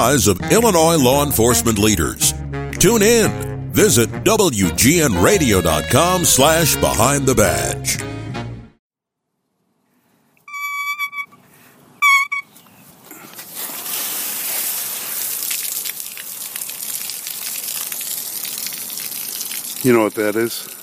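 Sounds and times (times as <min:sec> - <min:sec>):
speech: 0:00.0 - 0:08.2, 0:19.8 - 0:20.8
faucet squealing with whistling tones: 0:10.5 - 0:11.4, 0:12.0 - 0:12.5
water rushing through a garden hose: 0:13.4 - 0:20.8.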